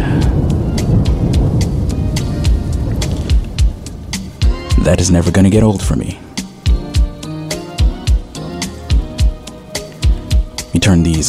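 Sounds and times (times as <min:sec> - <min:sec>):
deep rolling thunder: 0:00.0 - 0:08.4
speech: 0:04.9 - 0:06.2, 0:10.9 - 0:11.2.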